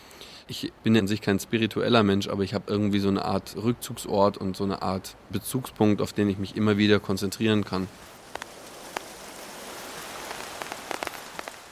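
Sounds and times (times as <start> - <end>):
speech: 0.5 - 8.1
steady rain falling on a river, stones and black-coated paper: 2.8 - 11.7.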